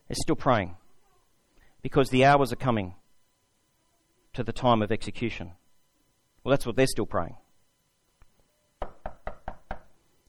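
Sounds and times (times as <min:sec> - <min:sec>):
speech: 0:00.1 - 0:00.8, 0:01.8 - 0:03.0, 0:04.4 - 0:05.6, 0:06.4 - 0:07.4
knocking on a wooden door: 0:08.8 - 0:10.0.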